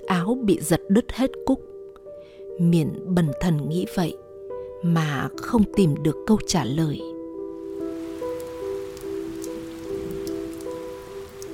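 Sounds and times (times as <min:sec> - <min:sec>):
speech: 0:00.1 - 0:01.7, 0:02.6 - 0:04.2, 0:04.8 - 0:07.1
soft sustained musical tones: 0:07.4 - 0:11.5
steady rain falling on a cold night: 0:07.6 - 0:11.5.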